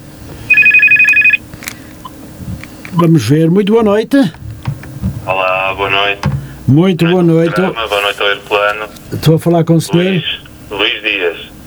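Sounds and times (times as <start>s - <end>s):
telephone ringing with an incoming call: 0.5s - 1.5s
speech: 3.0s - 4.4s, 5.3s - 11.5s.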